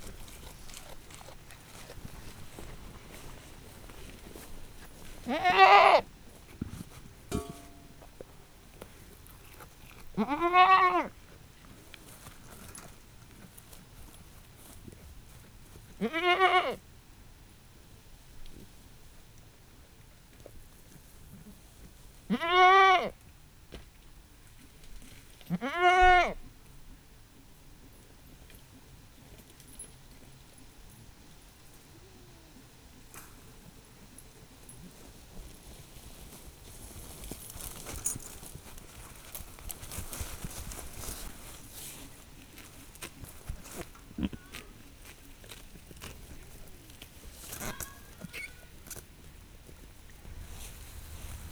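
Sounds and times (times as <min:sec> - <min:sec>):
domestic goat in a farmyard: 0:05.2 - 0:06.1, 0:10.2 - 0:11.1, 0:16.0 - 0:16.8, 0:22.3 - 0:23.2, 0:25.5 - 0:26.4, 0:44.2 - 0:44.8, 0:47.6 - 0:48.8.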